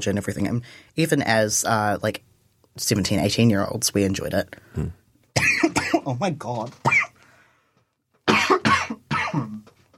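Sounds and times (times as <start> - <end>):
speech: 0.0 - 5.0, 6.0 - 7.0
harsh rough chesty coughing: 5.4 - 6.2, 6.8 - 7.2, 8.3 - 9.6.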